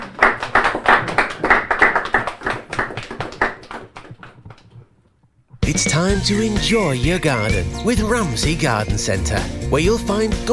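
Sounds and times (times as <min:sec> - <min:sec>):
crowd of schoolchildren applauding: 0:00.0 - 0:04.8
speech: 0:05.7 - 0:10.5.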